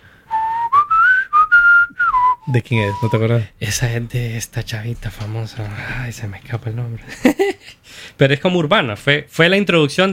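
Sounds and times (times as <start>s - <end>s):
person whistling a melodic hook mimicking a synthesizer line: 0.3s - 3.3s
speech: 2.5s - 10.1s
laughter: 7.0s - 7.8s.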